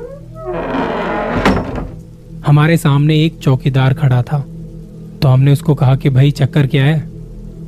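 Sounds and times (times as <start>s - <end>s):
heavy door creaking open, opened by a watchman: 0.0s - 2.2s
heavy door solid thunk: 0.6s - 2.0s
speech: 2.5s - 4.5s, 5.2s - 7.1s.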